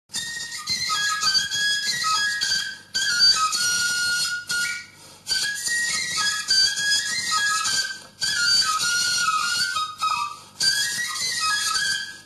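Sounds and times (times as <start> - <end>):
bone whistle blowing: 0.1 - 12.2.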